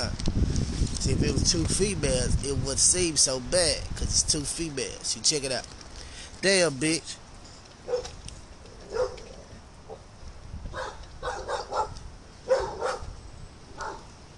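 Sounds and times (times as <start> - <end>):
speech: 1.0 - 5.8, 6.4 - 7.2
dog barking: 7.8 - 8.1, 8.9 - 9.3, 10.7 - 13.1, 13.8 - 14.1.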